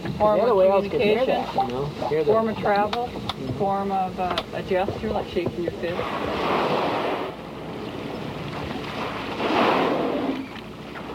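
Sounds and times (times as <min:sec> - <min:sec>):
steady wash of open water: 0:00.0 - 0:11.1
speech: 0:00.2 - 0:06.8
whales blowing at the surface: 0:05.9 - 0:11.1.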